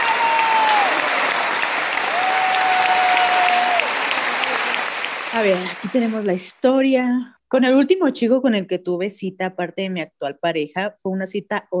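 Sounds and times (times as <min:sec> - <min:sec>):
applause from many hands: 0:00.0 - 0:06.5
speech: 0:05.4 - 0:11.7.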